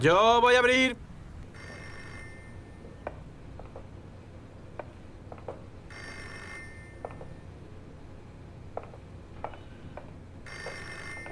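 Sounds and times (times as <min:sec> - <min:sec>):
speech: 0:00.0 - 0:01.0
low steady room hum: 0:00.0 - 0:11.2
old-fashioned telephone bell ringing in rattling bursts: 0:01.5 - 0:03.0, 0:05.9 - 0:07.5, 0:10.4 - 0:11.2.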